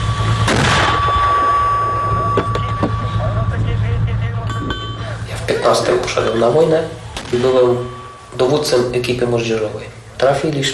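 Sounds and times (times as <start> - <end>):
steady low hum: 0.0 - 10.7
gunshot in wartime: 0.4 - 1.6, 7.2 - 7.9
speech: 5.6 - 10.7.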